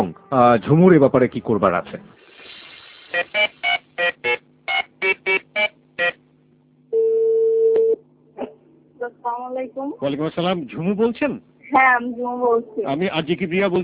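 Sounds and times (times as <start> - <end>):
speech: 0.0 - 2.2, 9.0 - 13.8
long steady telephone tone: 3.1 - 6.2, 6.9 - 8.0.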